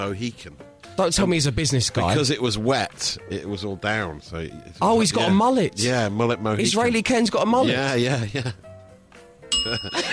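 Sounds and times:
speech: 0.0s - 8.6s, 9.6s - 10.1s
bell ringing with bright sustained metallic tone: 9.5s - 10.1s.

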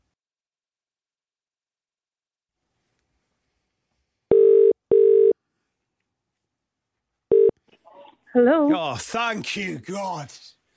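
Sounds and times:
telephone ringing tone on the line: 4.3s - 5.4s, 7.3s - 7.5s
speech: 8.3s - 10.6s.

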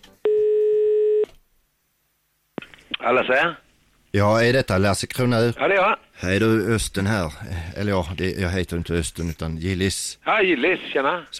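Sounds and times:
telephone ringing for an incoming call: 0.3s - 1.3s
speech: 3.1s - 11.3s.

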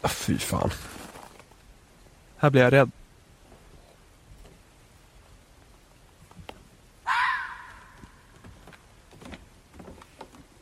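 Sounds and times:
speech: 0.0s - 1.0s, 2.4s - 3.0s
faint scattered clicks and rustles in a forest at night: 0.5s - 2.1s, 3.4s - 6.9s, 7.7s - 10.6s
roe deer harsh hoarse call during mating in a forest at night: 7.0s - 8.3s.

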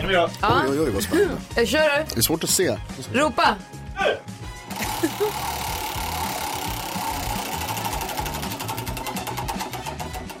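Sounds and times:
speech: 0.1s - 4.4s, 5.0s - 5.7s
laughter: 0.7s - 1.4s, 4.8s - 5.6s
prize wheel spun for a draw clicking: 4.7s - 10.3s.

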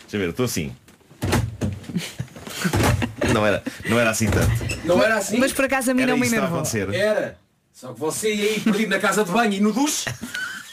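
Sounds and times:
speech: 0.1s - 0.8s, 2.0s - 10.3s
chair being moved, scraping and thumping: 1.0s - 3.6s, 4.2s - 5.1s.

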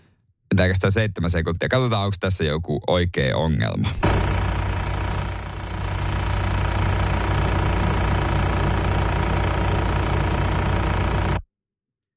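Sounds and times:
speech: 0.6s - 4.2s
mechanical rattle of something wobbling in the engine: 4.0s - 11.1s
Transporter van engine idling: 4.2s - 11.4s.

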